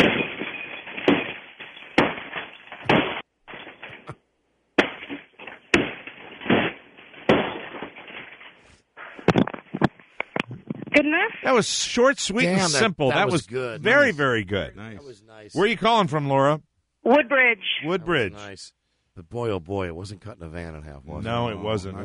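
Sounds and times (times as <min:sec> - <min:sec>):
Magnavox television set being smashed with heavy blows: 0:00.0 - 0:04.2, 0:04.8 - 0:08.6, 0:09.2 - 0:10.0
speech: 0:11.0 - 0:22.0.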